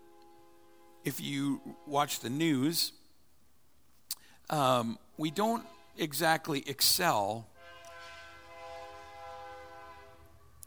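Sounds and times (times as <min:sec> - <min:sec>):
multi-tone train horn blast: 0:00.0 - 0:02.9, 0:05.2 - 0:06.4, 0:07.5 - 0:10.6
speech: 0:01.0 - 0:03.0, 0:04.5 - 0:07.5.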